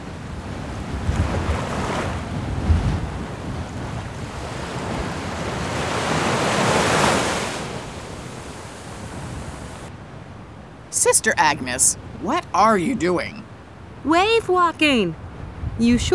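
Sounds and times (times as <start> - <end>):
heavy storm waves surging and crashing at sea: 0.0 - 9.9, 11.0 - 16.1
strong wind buffeting microphone on ship deck at sea: 0.0 - 9.9, 15.1 - 16.1
speech: 11.1 - 13.4, 14.0 - 15.2, 15.8 - 16.1.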